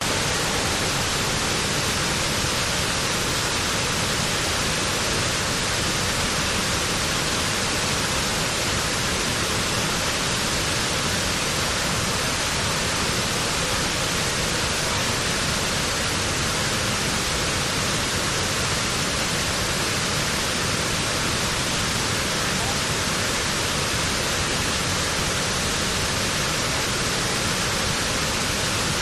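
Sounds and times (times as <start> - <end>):
waterfall: 0.0 - 29.0
people chatting: 13.0 - 15.2, 22.4 - 22.9.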